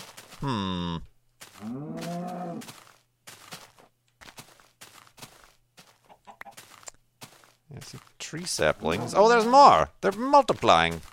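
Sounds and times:
speech: 0.4s - 1.9s, 8.3s - 11.1s
chicken squawking and clucking: 6.1s - 6.6s.

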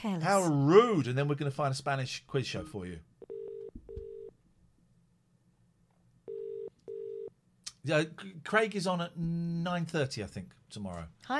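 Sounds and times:
speech: 0.0s - 3.1s, 7.8s - 11.3s
telephone ringback tone in double burrs: 3.2s - 4.3s, 6.3s - 7.3s.

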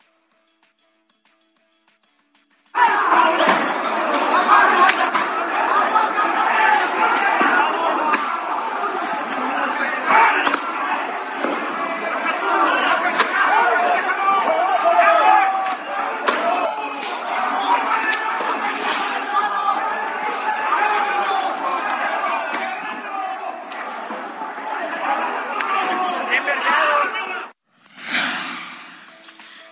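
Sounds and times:
football fans shouting and screaming during a stadium brawl: 2.7s - 27.6s
laughter: 2.8s - 11.2s.

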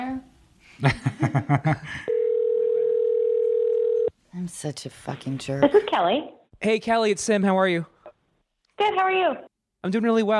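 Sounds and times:
speech: 0.8s - 2.2s, 4.4s - 8.0s, 8.8s - 10.3s
telephone dial tone when placing a call: 2.1s - 4.1s.

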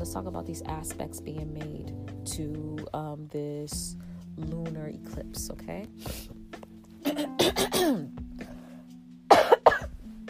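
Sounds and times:
speech: 0.0s - 6.4s, 7.1s - 8.2s
sick person coughing harsh raspy coughs: 7.0s - 8.2s, 9.3s - 10.0s.

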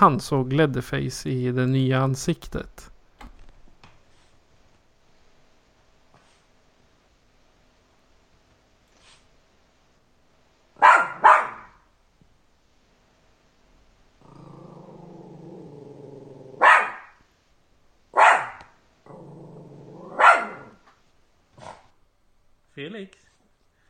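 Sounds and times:
speech: 0.0s - 2.9s
small bichon frise dog barking at the TV: 10.8s - 11.8s, 16.6s - 17.2s, 18.1s - 18.8s, 20.0s - 20.8s
bichon frise dog growling: 14.2s - 17.1s, 19.0s - 20.8s.

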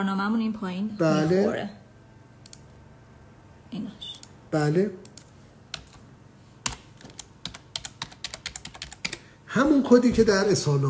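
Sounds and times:
speech: 0.0s - 1.8s, 3.7s - 5.0s, 9.6s - 10.8s
keystrokes on a computer keyboard typing a goods tariff code: 5.0s - 6.0s, 6.6s - 9.3s.

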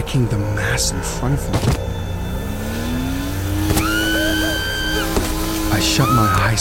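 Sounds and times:
high sustained whine: 0.0s - 6.1s
car engine revving and accelerating: 0.0s - 6.6s
speech: 0.1s - 1.9s, 5.8s - 6.6s.

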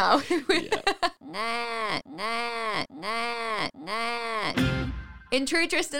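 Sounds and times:
speech: 0.0s - 4.6s, 5.3s - 5.9s
voice mimicking a baby's bleating cry: 1.2s - 4.6s.

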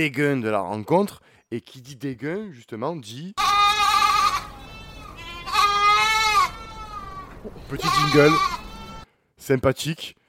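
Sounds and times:
speech: 0.0s - 3.6s, 7.7s - 8.6s, 9.4s - 10.2s
goat bleating with tail: 3.4s - 9.1s.

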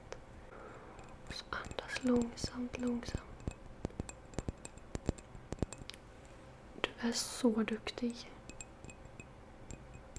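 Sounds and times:
fingers tapping on a hard surface: 1.0s - 6.0s, 8.4s - 10.1s
speech: 2.0s - 3.3s, 7.0s - 8.4s.

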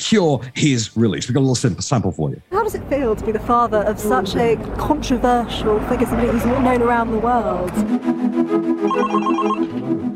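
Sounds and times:
speech: 0.0s - 9.6s
telephone ringing with warbling electronic tone: 8.8s - 9.7s.

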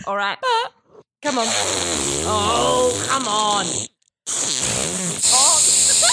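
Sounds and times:
speech: 0.0s - 5.5s
voice imitating a wet fart with a blubbery sputter: 1.2s - 6.1s.

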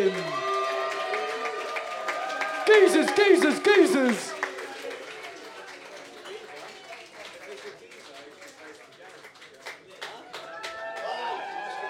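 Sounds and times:
scattered whoops from audience: 0.0s - 3.2s, 10.4s - 11.8s
audience clapping and cheering: 0.0s - 11.8s
speech: 2.7s - 4.4s.

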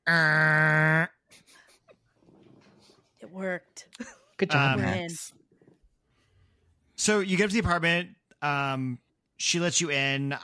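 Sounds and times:
voice imitating a door creaking open: 0.0s - 1.2s
speech: 0.1s - 0.7s, 3.4s - 5.4s, 7.0s - 10.4s.

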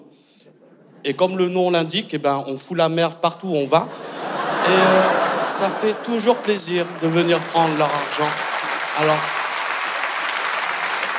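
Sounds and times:
laughter: 0.5s - 1.8s, 3.8s - 9.4s
speech: 1.0s - 4.1s, 4.7s - 9.4s
audience applause: 4.2s - 11.1s.

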